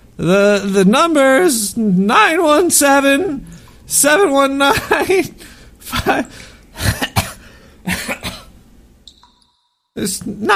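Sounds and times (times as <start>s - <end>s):
speech: 0.2s - 6.9s, 10.0s - 10.5s
person clearing throat: 6.0s - 8.5s.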